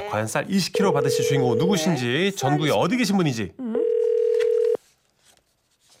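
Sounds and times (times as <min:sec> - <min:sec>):
speech: 0:00.1 - 0:03.6
telephone tone while placing a call from a radio station: 0:00.8 - 0:02.0, 0:03.6 - 0:04.8.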